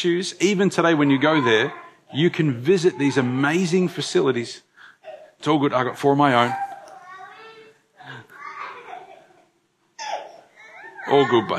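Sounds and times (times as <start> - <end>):
speech: 0.0 - 4.7, 5.4 - 6.7, 11.1 - 11.5
young child crying sharply in a church audience: 1.0 - 3.6, 6.5 - 9.2, 10.0 - 11.5
young child babbling and squealing in a church audience: 1.2 - 2.2, 6.4 - 9.2, 10.0 - 11.5.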